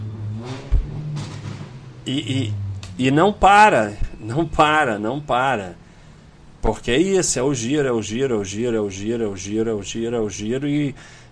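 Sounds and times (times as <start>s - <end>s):
motorcycle engine revving as it passes: 0.0s - 3.3s
brief low thump: 0.7s - 1.6s
speech: 2.1s - 5.8s, 6.6s - 11.2s.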